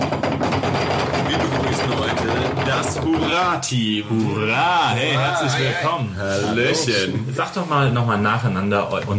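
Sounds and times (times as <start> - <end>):
voice imitating a drum roll: 0.0 - 5.5
speech: 3.2 - 9.1.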